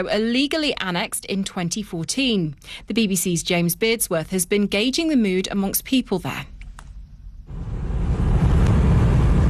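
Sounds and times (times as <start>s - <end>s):
speech: 0.0s - 6.5s
road traffic of cars on a bridge: 7.5s - 9.4s.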